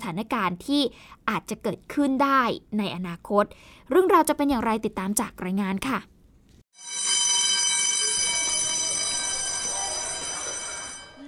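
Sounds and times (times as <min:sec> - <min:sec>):
speech: 0:00.0 - 0:06.1
school emergency electric alarm bell ringing: 0:06.8 - 0:11.2.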